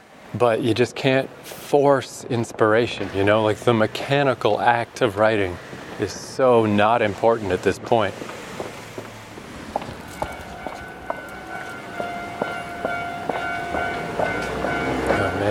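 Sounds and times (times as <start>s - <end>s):
speech: 0.3s - 8.3s
passing train rumble in Tokyo: 1.3s - 15.4s
train wheels clacking over rail joints in Tokyo: 8.1s - 15.4s
sustained tonal whine of a passing train: 9.1s - 15.4s.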